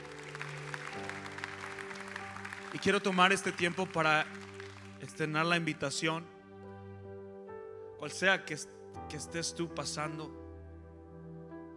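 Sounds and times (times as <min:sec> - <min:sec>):
audience applauding: 0:00.0 - 0:05.9
speech: 0:02.8 - 0:04.4, 0:05.0 - 0:06.3, 0:08.0 - 0:10.4.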